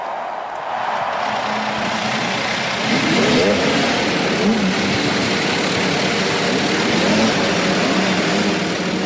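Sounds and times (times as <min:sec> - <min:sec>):
Indy race car engines starting and revving: 0:00.9 - 0:09.0.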